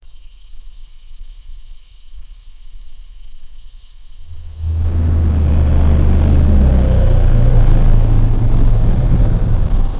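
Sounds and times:
automobile exhaust system: 0:04.3 - 0:09.9.

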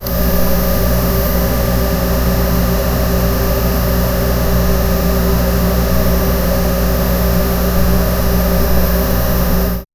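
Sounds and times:
computer intercooler: 0:00.0 - 0:09.8.

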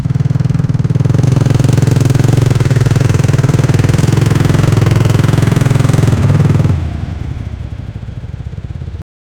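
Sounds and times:
Honda CB 650 motorcycle engine: 0:00.0 - 0:09.0.

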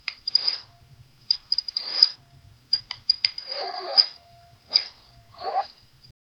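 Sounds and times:
tiny saw cutting rope on a farm: 0:00.3 - 0:00.7, 0:01.6 - 0:02.2, 0:03.4 - 0:05.8.

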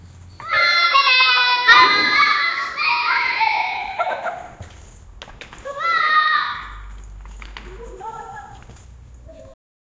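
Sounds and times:
two children running: 0:00.3 - 0:09.6
laughter: 0:01.0 - 0:04.9.

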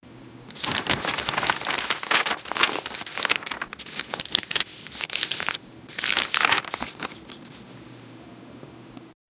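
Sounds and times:
office sounds: 0:00.5 - 0:07.8.

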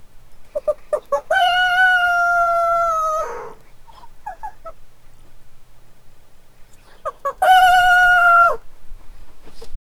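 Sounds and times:
chicken cooing: 0:00.5 - 0:04.8, 0:06.8 - 0:08.6.

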